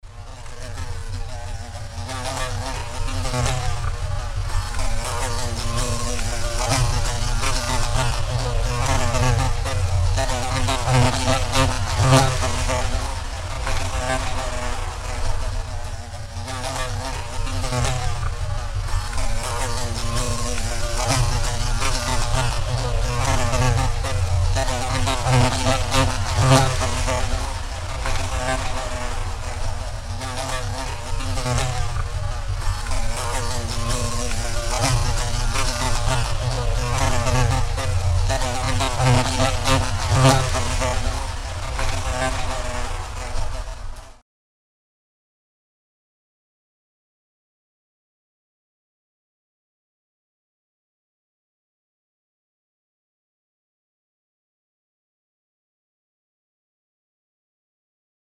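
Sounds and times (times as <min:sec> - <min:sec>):
bee flying: 0:00.1 - 0:44.2.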